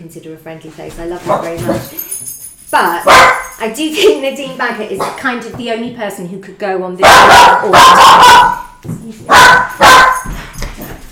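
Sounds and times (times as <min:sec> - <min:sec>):
speech: 0:00.0 - 0:09.4
dog barking loudly: 0:03.0 - 0:03.6, 0:07.0 - 0:10.4.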